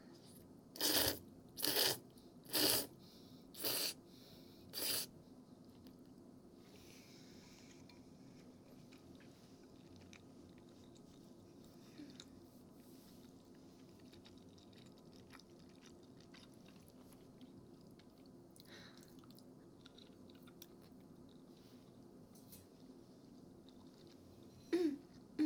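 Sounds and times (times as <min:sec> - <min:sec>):
people chewing and biting while eating a meal together: 0:00.8 - 0:02.9, 0:04.7 - 0:25.3.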